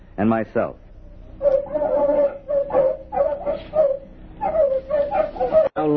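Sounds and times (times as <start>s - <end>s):
speech: 0.2s - 0.8s, 5.8s - 5.9s
several terriers barking and yipping in crop fields: 1.4s - 5.8s.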